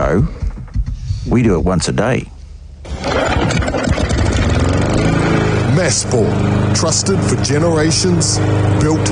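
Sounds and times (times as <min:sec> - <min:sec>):
speech: 0:00.1 - 0:00.4, 0:01.3 - 0:02.4, 0:05.8 - 0:09.0
small petrol lawn mower engine running: 0:02.8 - 0:09.0.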